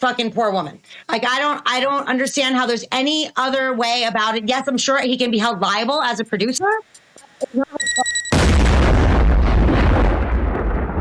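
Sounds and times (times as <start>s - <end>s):
speech: 0.0s - 8.3s
short tonal beep sequence: 7.4s - 8.4s
single huge explosion with heavy low rumble: 8.3s - 10.9s.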